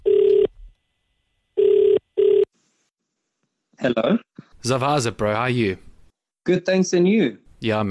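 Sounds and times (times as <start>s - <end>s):
phone ringing tone on an outgoing call: 0.0s - 0.5s, 1.6s - 2.5s
speech: 3.8s - 7.8s.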